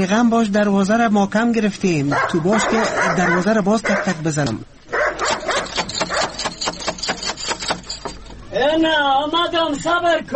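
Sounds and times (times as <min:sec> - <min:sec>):
speech: 0:00.0 - 0:04.8, 0:08.6 - 0:10.3
dog barking: 0:02.1 - 0:04.2, 0:04.9 - 0:06.5.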